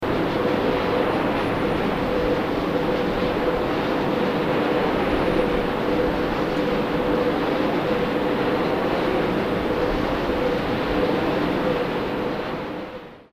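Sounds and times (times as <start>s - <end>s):
wind turbine: 0.0s - 13.3s.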